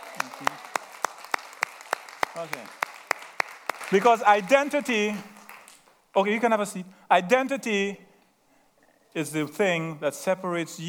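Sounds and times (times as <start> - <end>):
rhythmic audience clapping: 0.0 - 6.0
speech: 2.4 - 2.9, 3.9 - 5.3, 6.2 - 8.0, 9.2 - 10.8.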